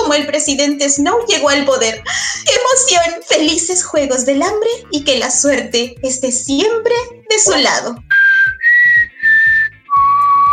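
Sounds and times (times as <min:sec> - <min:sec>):
speech: 0:00.2 - 0:08.1
whistled tune: 0:08.0 - 0:10.5.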